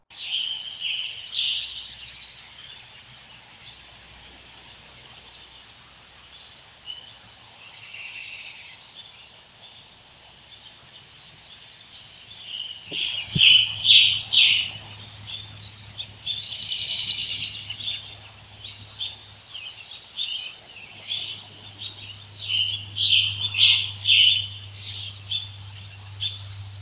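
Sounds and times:
birds singing in woods: 0.0s - 26.8s.

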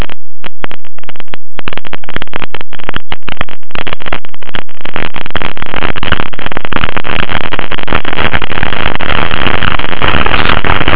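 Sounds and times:
static noise: 0.0s - 10.9s.

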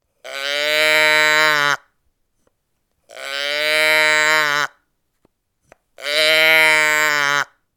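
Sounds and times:
cow box toy mooing: 0.2s - 1.8s, 3.1s - 4.8s, 6.0s - 7.6s.

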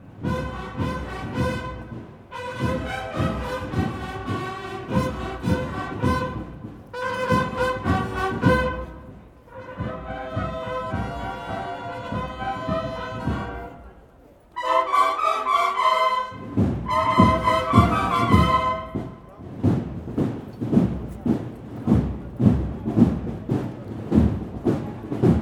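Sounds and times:
marching band playing: 0.0s - 25.4s.

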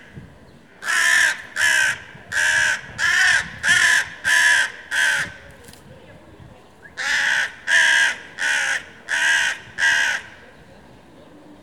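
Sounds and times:
crow cawing: 0.8s - 5.4s, 7.0s - 10.4s.

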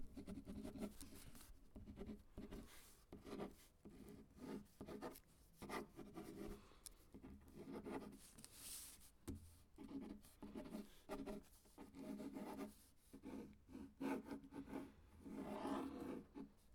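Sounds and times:
pen writing on paper: 0.1s - 6.6s, 7.1s - 8.2s, 9.8s - 16.5s.

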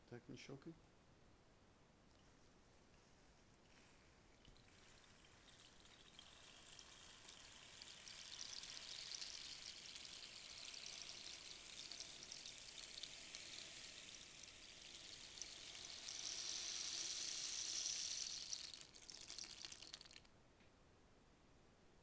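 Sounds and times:
rain stick: 3.6s - 20.3s.

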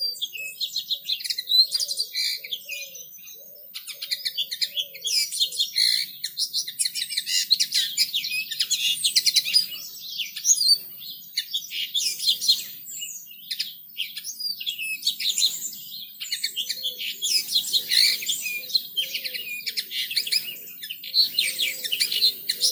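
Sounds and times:
several birds singing in a garden: 0.0s - 22.6s.

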